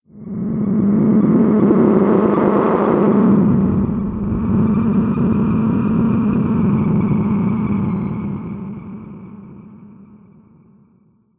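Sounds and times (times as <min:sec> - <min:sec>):
dark sci-fi sound design texture: 0:00.7 - 0:09.0.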